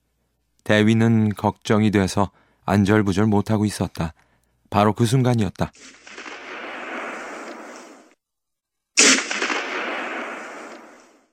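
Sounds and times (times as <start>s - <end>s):
speech: 0.7s - 6.0s
gunshots with long rolling echo: 5.8s - 8.2s, 9.0s - 11.3s.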